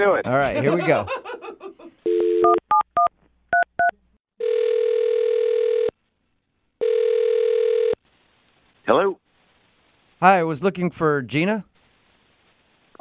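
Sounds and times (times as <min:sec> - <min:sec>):
speech: 0:00.0 - 0:01.4, 0:10.2 - 0:11.7
laughter: 0:00.3 - 0:02.0
telephone dial tone: 0:02.1 - 0:02.6, 0:03.8 - 0:06.0, 0:06.8 - 0:08.0
telephone ringback tones: 0:04.4 - 0:05.9, 0:06.8 - 0:08.0.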